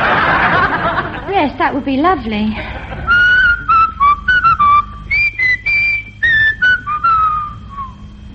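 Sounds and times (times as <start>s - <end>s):
laughter: 0.0s - 1.5s, 2.5s - 3.8s
speech: 1.4s - 2.8s
person whistling a slow simple melody: 3.0s - 8.1s.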